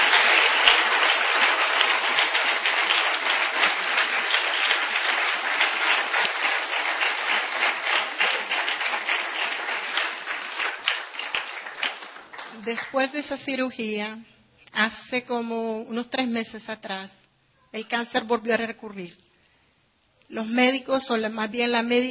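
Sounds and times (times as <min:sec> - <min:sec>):
audience applause at a church service: 0:00.0 - 0:13.2
speech: 0:12.7 - 0:19.2, 0:20.3 - 0:22.0.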